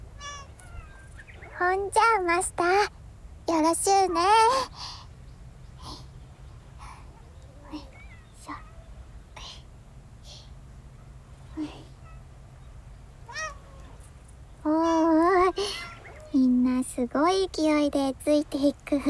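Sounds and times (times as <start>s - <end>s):
steady low hum: 0.0s - 19.0s
cats meowing at feeding time: 0.1s - 2.9s, 7.1s - 9.0s, 13.2s - 14.1s, 14.7s - 16.5s
speech: 1.6s - 4.9s, 17.3s - 19.0s
soft breathy sounds: 3.9s - 5.2s, 5.8s - 8.7s, 9.3s - 10.6s, 11.4s - 12.2s, 13.8s - 16.9s.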